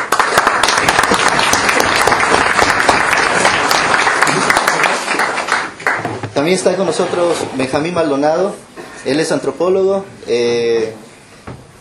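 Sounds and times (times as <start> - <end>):
audience applause for an introduced guest at a university event: 0.0 - 6.2
speech: 6.4 - 11.0.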